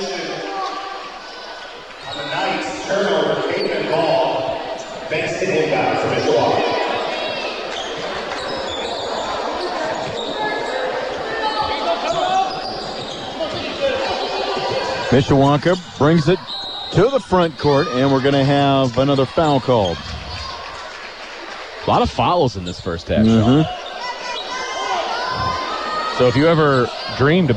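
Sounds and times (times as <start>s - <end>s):
steady crowd noise: 0.0s - 27.5s
basketball dribbled on a court during a girls' game: 9.6s - 18.0s
speech: 15.1s - 20.1s, 21.8s - 23.8s, 26.2s - 27.5s.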